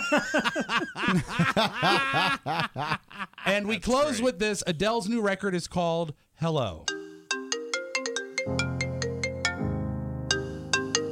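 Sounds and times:
laughter: 0.0s - 3.7s
speech: 0.1s - 3.0s, 3.6s - 7.0s, 8.4s - 8.8s
bright electronic phone ringtone: 6.9s - 9.7s, 10.3s - 11.1s.

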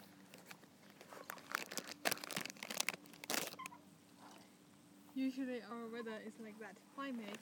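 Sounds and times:
munching and crunching on snacks: 0.2s - 3.8s
speech: 5.2s - 7.3s.

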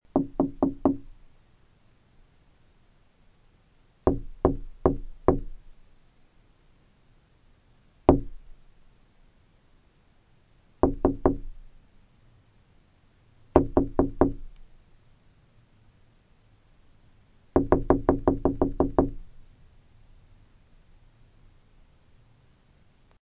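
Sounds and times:
knocking on glass: 0.1s - 1.1s, 4.1s - 5.6s, 8.1s - 8.4s, 10.8s - 11.6s, 13.6s - 14.5s, 17.6s - 19.2s.

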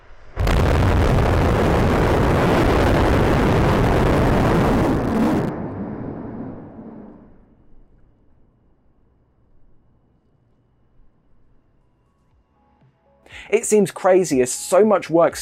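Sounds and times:
deep rumble after rocket engine cutoff: 0.0s - 8.8s
six Raptor engines roaring in a static fire test on the Ship 25 upper stage: 0.1s - 8.0s
speech: 13.5s - 15.4s.

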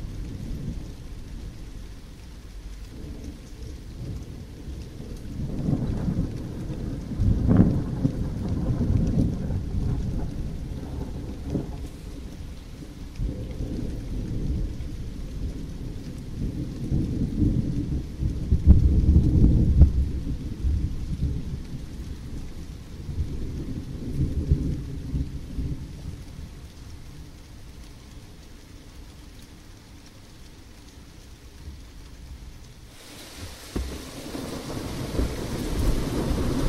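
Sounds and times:
steady heavy rain pouring down: 0.0s - 36.6s
deep thunder rumbling and rolling: 2.6s - 26.5s, 32.8s - 36.6s.

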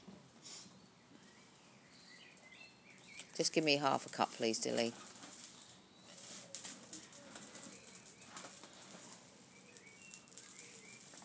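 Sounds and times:
steady hiss of outdoor noise: 0.0s - 11.2s
blackbird singing fluty whistled phrases: 1.3s - 3.4s, 9.5s - 11.1s
speech: 3.4s - 5.1s.

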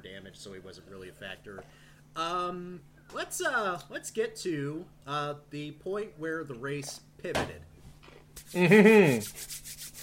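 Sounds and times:
speech: 0.1s - 7.7s, 8.4s - 9.8s
hands rubbing together briskly: 8.4s - 10.0s.

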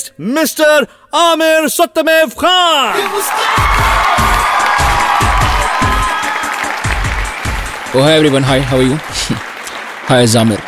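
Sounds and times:
speech: 0.2s - 4.0s, 7.9s - 9.5s, 10.1s - 10.6s
large crowd applauding and cheering with whoops and shouts: 2.9s - 10.6s
rhythmic low thumps: 3.6s - 9.4s.

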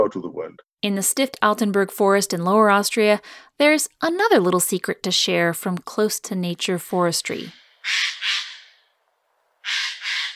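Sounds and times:
speech: 0.1s - 8.1s
Eurasian jay calling in a close-to-nature managed forest in Lower Austria: 7.5s - 8.8s, 9.6s - 10.3s.

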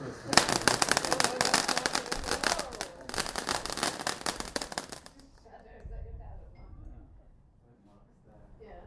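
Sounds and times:
firework rocket: 0.0s - 5.5s
faint voices: 0.0s - 8.8s.

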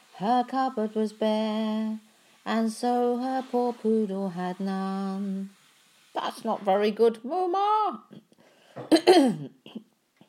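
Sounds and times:
speech: 0.2s - 5.6s, 6.2s - 9.8s
throat clearing: 8.8s - 9.9s.

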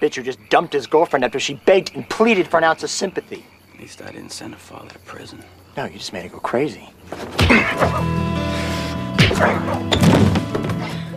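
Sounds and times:
speech: 0.0s - 8.6s, 9.2s - 11.0s
body hitting the ground: 7.2s - 8.0s, 9.2s - 10.9s
punches thudding in a scuffle: 7.2s - 8.0s, 9.2s - 10.9s
steady musical drone: 7.4s - 11.1s.

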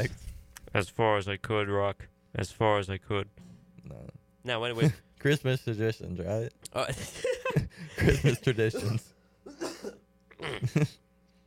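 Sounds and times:
speech: 0.0s - 7.3s, 7.9s - 9.1s, 10.4s - 11.0s
person coughing with an odd persistent cough: 7.4s - 11.0s.

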